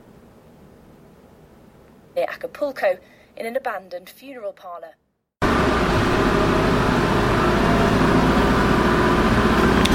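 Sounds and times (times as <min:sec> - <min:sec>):
speech: 0:02.2 - 0:05.0
airport shuttle bus engine drone: 0:05.4 - 0:09.9.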